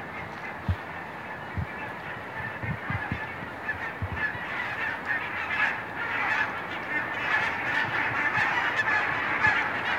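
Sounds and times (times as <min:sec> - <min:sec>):
flock of geese honking in flight over a reed-fringed shore: 0:00.1 - 0:09.9.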